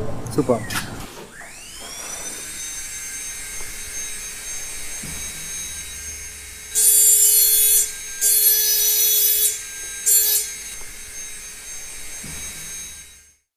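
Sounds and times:
speech: 0.4 - 0.8
high-pitched rotary grinding tool whining as a glass engraver engraves glass: 1.3 - 13.4
harsh abrasive grinding against glass in a glass-cutting workshop: 6.8 - 11.4.

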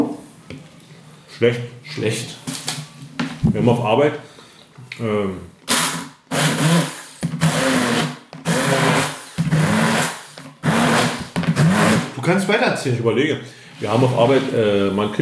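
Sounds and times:
speech: 1.4 - 2.6, 3.4 - 4.3, 5.0 - 5.6, 12.3 - 15.2
blender pureeing doner kebab: 5.7 - 12.2.

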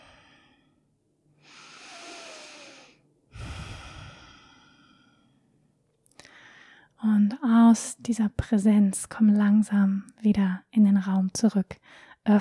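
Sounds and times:
deep breath in and out during a guided mindfulness exercise: 0.0 - 5.5, 6.2 - 7.0
speech: 7.7 - 12.3.

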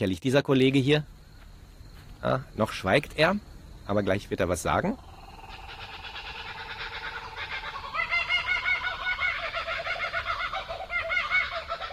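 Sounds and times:
speech: 0.0 - 1.2, 2.2 - 5.1
laughing kookaburra calling: 5.4 - 11.9.

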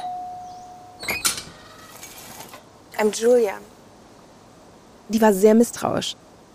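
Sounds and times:
house doorbell chime: 0.0 - 1.1
faint steady hum: 0.0 - 6.5
speech: 3.0 - 3.7, 5.1 - 6.2.

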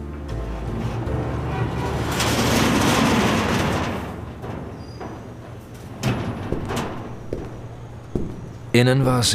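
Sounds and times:
large sticking workshop door on 32nd Street grinding open: 0.0 - 8.8
workshop door knocking and rattling as it settles: 2.3 - 8.8
speech: 8.7 - 9.3.

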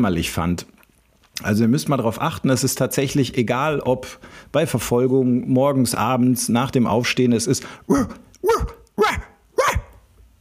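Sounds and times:
speech: 0.0 - 0.8, 1.4 - 8.8
dog barking: 8.0 - 10.0.

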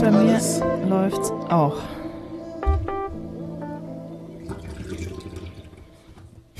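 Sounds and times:
speech: 0.1 - 2.0
water running and splashing: 4.5 - 6.2.

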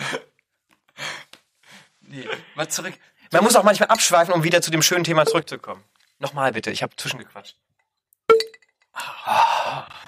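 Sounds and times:
speech: 2.1 - 7.7
swing-top beer bottle opening pop: 8.3 - 8.6.

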